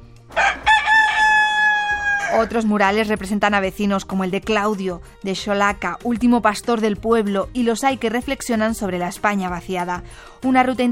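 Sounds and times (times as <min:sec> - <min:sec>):
rooster crowing: 0:00.3 - 0:02.6
speech: 0:02.3 - 0:10.9.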